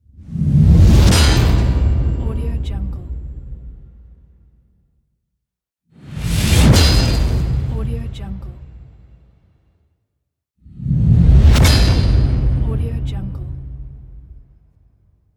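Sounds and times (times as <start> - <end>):
whoosh: 0.0 - 4.6, 6.0 - 9.4, 10.6 - 14.8
metal hit: 0.9 - 2.2, 6.4 - 8.0, 11.4 - 14.6.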